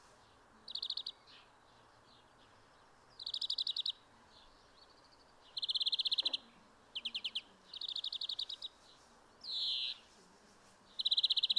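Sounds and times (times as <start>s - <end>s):
Chloris chloris European greenfinch song with rattling trills: 0.0s - 10.0s, 11.0s - 11.5s
low background noise: 0.0s - 11.5s.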